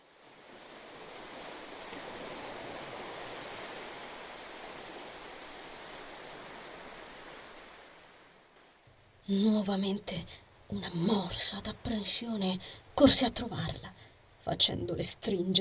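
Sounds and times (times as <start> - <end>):
rough stormy sea surf and spray roaring: 0.0 - 8.7
speech: 9.3 - 15.5.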